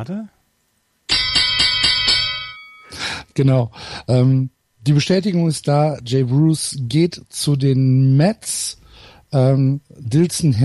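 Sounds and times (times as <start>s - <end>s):
speech: 0.0s - 0.4s, 3.4s - 10.6s
bright bell ringing: 1.1s - 3.0s.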